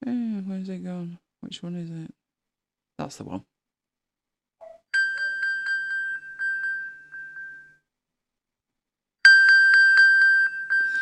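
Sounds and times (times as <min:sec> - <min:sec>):
speech: 0:00.6 - 0:02.2, 0:03.0 - 0:03.5
iPhone pinging triggered from Apple Watch: 0:04.6 - 0:07.8, 0:09.3 - 0:11.0.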